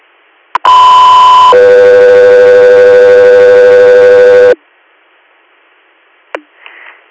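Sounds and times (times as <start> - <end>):
two-tone radio dispatch alert: 0.6 - 4.6.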